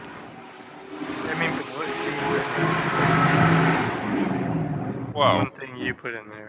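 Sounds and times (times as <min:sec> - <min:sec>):
loud car engine revving past: 0:00.0 - 0:05.2
faint voices: 0:01.2 - 0:03.2, 0:05.2 - 0:06.4
speech: 0:05.2 - 0:06.4.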